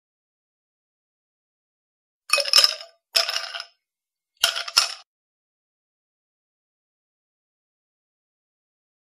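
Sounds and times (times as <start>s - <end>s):
ice cubes in a glass: 2.3s - 3.7s, 4.4s - 5.0s.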